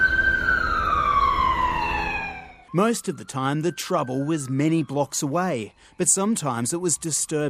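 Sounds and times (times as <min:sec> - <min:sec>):
low traffic rumble: 0:00.0 - 0:03.5
emergency vehicle siren racing past: 0:00.0 - 0:07.4
speech: 0:02.7 - 0:07.4.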